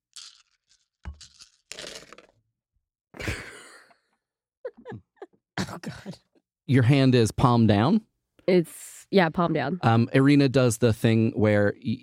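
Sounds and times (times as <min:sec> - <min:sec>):
dice being shaken and rolled: 0:00.1 - 0:02.4
speech: 0:05.8 - 0:12.0.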